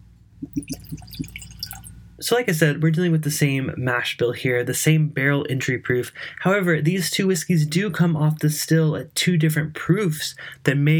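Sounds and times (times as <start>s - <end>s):
whiskey glugging from a bottle into a glass: 0.4s - 1.9s
light splashy tinkles: 0.6s - 1.9s
speech: 2.2s - 10.9s.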